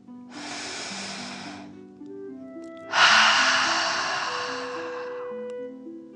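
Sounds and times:
soft sustained musical tones: 0.0s - 6.1s
person taking deep breaths in and out: 0.3s - 1.8s, 2.9s - 5.5s.

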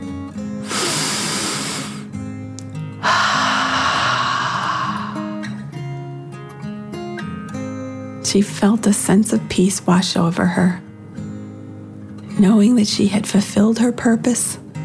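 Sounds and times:
deep slow breath in and out: 0.6s - 2.1s, 3.0s - 5.7s
speech: 8.3s - 10.9s, 12.4s - 14.6s.

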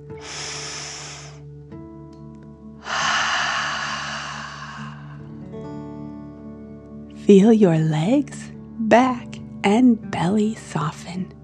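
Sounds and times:
airy deep breath drawn in through the nose: 0.0s - 1.5s, 2.8s - 5.4s
forceful whooshing fire-breath exhale through the mouth: 0.1s - 1.4s, 2.8s - 5.3s
speech: 7.3s - 11.4s.

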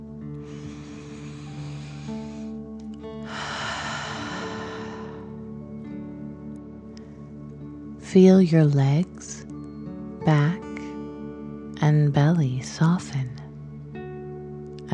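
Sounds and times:
soft sustained music: 0.0s - 14.9s
deep breath in and out as a fire-breathing exercise: 0.4s - 5.6s
speech: 8.1s - 9.4s, 10.3s - 10.5s, 12.1s - 13.3s.

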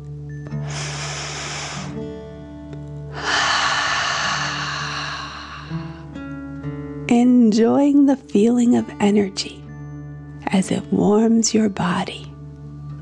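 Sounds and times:
soft music with sustained tones: 0.0s - 13.0s
deep breath in and out: 0.5s - 2.2s, 3.1s - 6.2s
speech: 7.5s - 9.6s, 10.5s - 12.3s.

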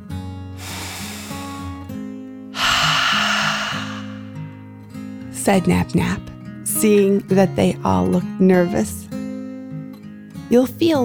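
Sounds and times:
deep breath in and out: 0.5s - 1.9s, 2.6s - 4.4s
soft gentle music: 5.2s - 11.0s
speech: 5.5s - 9.0s, 10.5s - 11.0s.

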